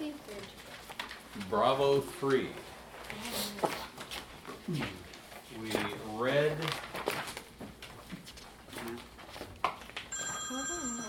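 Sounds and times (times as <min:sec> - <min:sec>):
rustling: 0:00.0 - 0:10.2
speech: 0:01.4 - 0:03.3, 0:04.7 - 0:06.7
telephone ringing with trilling tone: 0:10.1 - 0:11.0.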